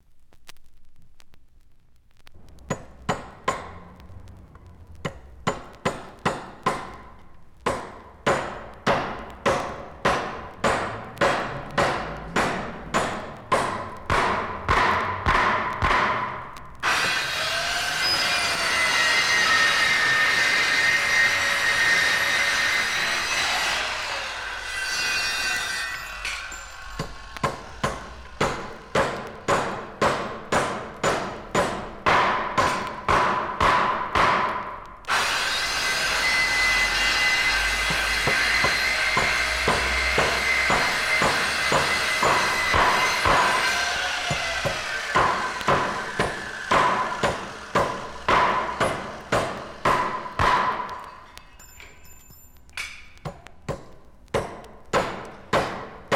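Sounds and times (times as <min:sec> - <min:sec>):
hammering a nail: 0:02.7 - 0:03.8, 0:05.0 - 0:17.2, 0:27.0 - 0:35.3, 0:37.7 - 0:51.1, 0:53.2 - 0:56.1
electric saw: 0:16.8 - 0:29.0, 0:35.1 - 0:50.3.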